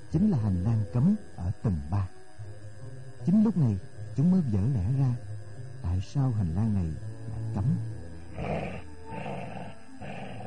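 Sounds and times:
speech: 0:00.1 - 0:02.2, 0:03.2 - 0:08.8
giant three-headed monster dog growling deeply: 0:08.3 - 0:10.4.

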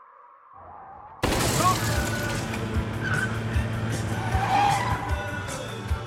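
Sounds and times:
Lada Niva car engine roaring in a chase: 0:01.2 - 0:06.0
car tyres skidding in a chase: 0:01.2 - 0:06.0.

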